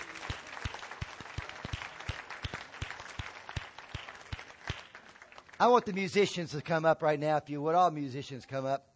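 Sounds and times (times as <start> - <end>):
audience applause: 0.0 - 6.3
speech: 5.6 - 8.9.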